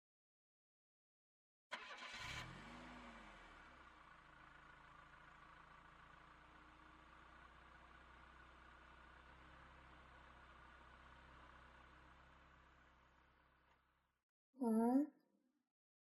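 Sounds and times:
car engine idling in a traffic jam: 1.8 - 13.9
speech: 14.6 - 15.2.

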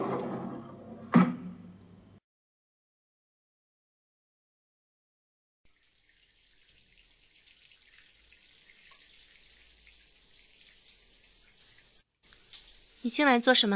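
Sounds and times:
shower water running: 5.7 - 13.7
speech: 13.0 - 13.7.

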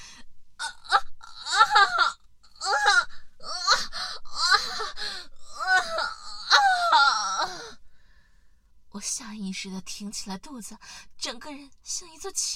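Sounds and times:
loud anguished wailing cries of pain: 0.6 - 4.9, 5.5 - 7.7
speech: 9.6 - 12.5.

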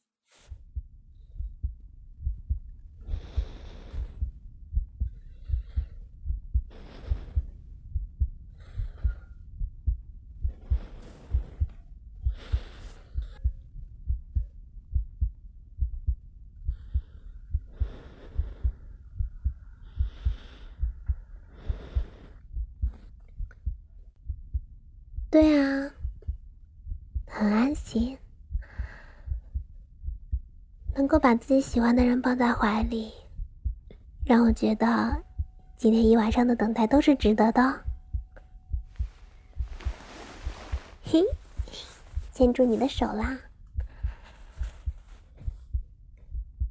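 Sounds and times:
heartbeat thumping: 0.5 - 46.6
speech: 25.4 - 25.9, 27.4 - 28.2, 31.1 - 33.2, 34.3 - 37.8, 41.1 - 41.4, 42.4 - 43.5
soft rustling: 38.8 - 43.4.

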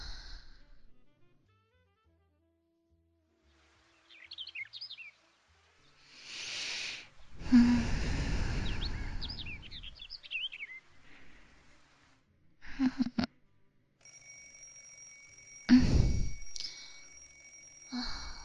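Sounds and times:
soft sighs: 0.0 - 0.8, 6.1 - 9.9, 15.7 - 17.3, 17.9 - 18.4
faint chirps: 5.9 - 11.9, 14.1 - 18.4
alarm clock ringing: 14.0 - 18.4.

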